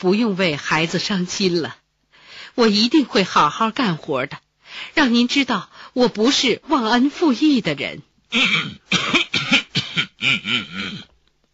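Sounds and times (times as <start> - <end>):
speech: 0.0 - 1.8, 2.6 - 9.2, 10.2 - 11.1
man clearing his throat: 8.3 - 11.2.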